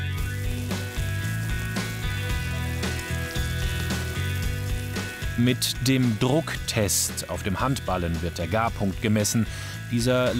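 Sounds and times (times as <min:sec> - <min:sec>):
unseasoned steak searing in a well-heated frying pan: 0:00.0 - 0:07.2
music: 0:00.0 - 0:10.3
speech: 0:05.4 - 0:10.3.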